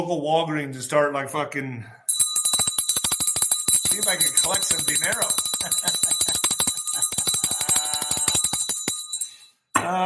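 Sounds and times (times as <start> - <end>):
speech: 0.0 - 2.0, 4.0 - 6.0, 9.8 - 10.0
hand bell shaken rapidly: 2.1 - 9.6.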